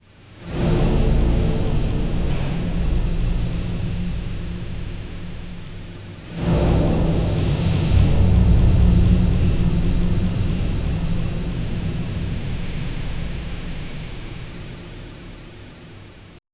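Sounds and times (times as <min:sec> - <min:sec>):
soft elegant background ambient music: 0:00.3 - 0:16.4.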